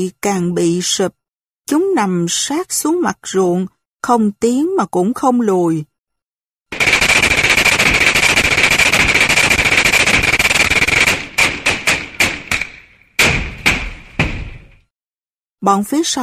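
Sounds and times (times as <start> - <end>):
speech: 0.0 - 5.9, 15.6 - 16.2
machine gun fire: 6.7 - 14.8.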